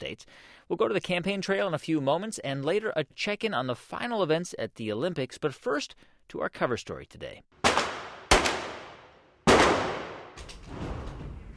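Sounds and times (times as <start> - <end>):
speech: 0.0 - 7.6
gunshots at a shooting range in Virginia: 7.6 - 10.4
soft rough rumbling noise: 10.6 - 11.5.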